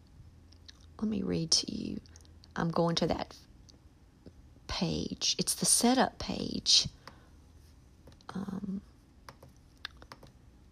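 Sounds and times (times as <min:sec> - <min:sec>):
speech: 0:01.0 - 0:03.5, 0:04.8 - 0:07.0, 0:08.3 - 0:08.7
computer mouse clicks on a publishing setup page: 0:09.2 - 0:10.4.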